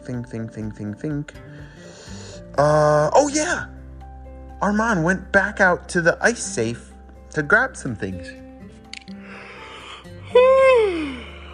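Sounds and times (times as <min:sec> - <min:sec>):
speech: 0:00.0 - 0:01.8, 0:02.5 - 0:03.7, 0:04.6 - 0:08.4
person yawning: 0:10.3 - 0:11.4.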